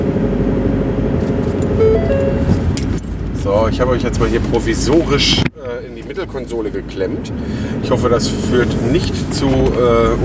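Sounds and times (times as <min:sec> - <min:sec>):
car engine and road rumble: 0:00.0 - 0:10.2
car warning chime for open boot: 0:01.7 - 0:02.9
speech: 0:03.5 - 0:10.2.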